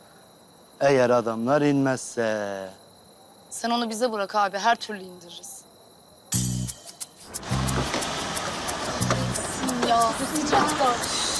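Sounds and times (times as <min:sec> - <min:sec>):
speech: 0:00.8 - 0:02.8, 0:03.6 - 0:05.6, 0:09.9 - 0:11.2
low pulsing rumble of car engine noise: 0:07.3 - 0:11.3
car bumping into a parked car with a dull thud: 0:07.5 - 0:11.0.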